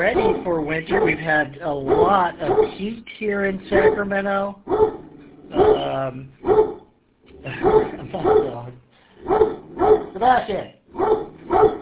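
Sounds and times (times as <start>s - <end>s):
dog barking at a house in Sacramento: 0.0s - 2.9s, 3.7s - 4.1s, 4.7s - 6.9s, 7.6s - 10.2s, 10.9s - 11.8s
speech: 0.0s - 5.0s, 5.6s - 6.6s, 10.2s - 11.8s.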